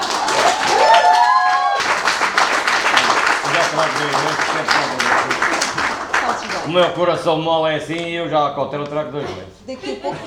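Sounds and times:
theatre audience applause at a fiftieth-anniversary celebration: 0.0s - 6.9s
speech: 3.8s - 5.3s, 6.7s - 10.2s
laughter: 9.3s - 10.2s.

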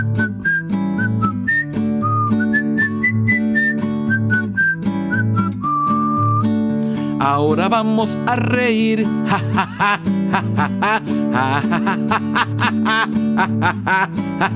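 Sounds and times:
person whistling a children's song tune: 0.0s - 6.6s
speech: 7.3s - 14.5s
laughter: 9.2s - 14.5s.

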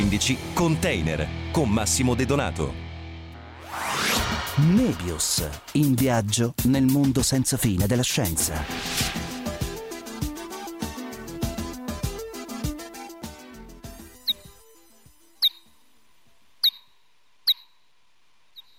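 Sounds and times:
music: 0.0s - 15.4s
speech: 0.1s - 2.8s, 4.6s - 9.2s
bat ultrasonic vocalizations played back: 14.2s - 14.7s, 15.4s - 15.8s, 16.6s - 17.8s, 18.5s - 18.7s.

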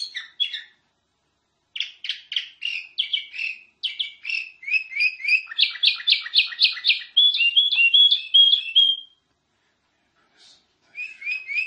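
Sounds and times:
nightingale singing: 0.0s - 0.8s, 1.7s - 9.2s, 10.9s - 11.6s.

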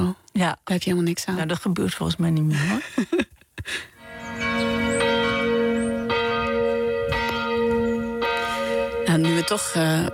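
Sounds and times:
speech: 0.4s - 3.9s, 9.2s - 10.1s
church bells ringing: 4.0s - 10.1s.

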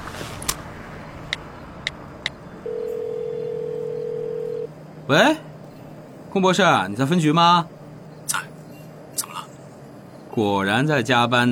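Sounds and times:
steady mid-pitched telephone tone: 2.6s - 4.7s
speech: 5.1s - 5.5s, 6.3s - 7.8s, 10.4s - 11.4s.

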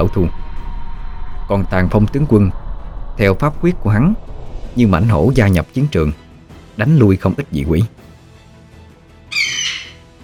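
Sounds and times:
speech: 0.0s - 0.4s, 1.5s - 2.6s, 3.2s - 6.2s, 6.8s - 8.0s
eagle screech: 9.3s - 10.1s.

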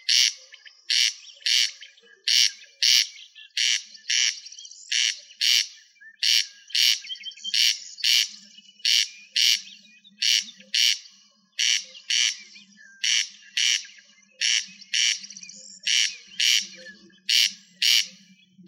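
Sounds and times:
rail squawking: 0.0s - 18.6s.

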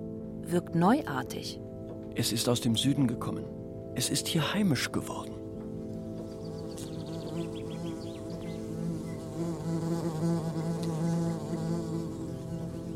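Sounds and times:
speech: 0.5s - 5.4s
wasps buzzing under a fig tree feeding on a fig: 6.2s - 12.9s.

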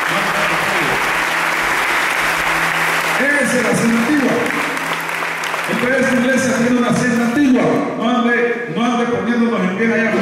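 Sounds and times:
church congregation applauding strongly during a sermon: 0.0s - 7.6s
crowd noise: 0.0s - 10.1s
speech: 3.2s - 4.7s, 5.7s - 10.1s.

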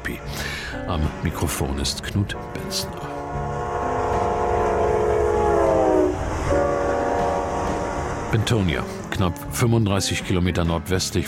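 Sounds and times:
speech: 0.1s - 3.1s, 8.4s - 11.2s
passenger train multi-tone horn chord: 2.3s - 9.0s.

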